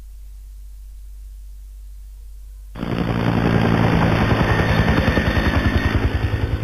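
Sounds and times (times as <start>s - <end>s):
helicopter flying with rotor chop: 2.8s - 6.6s.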